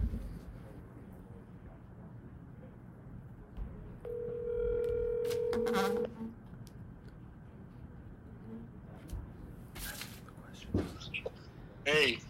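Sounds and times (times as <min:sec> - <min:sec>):
hissy murmuring background: 0:00.0 - 0:04.0, 0:07.1 - 0:12.2
steady electronic telephone ringback tone on an outgoing call: 0:04.1 - 0:06.1.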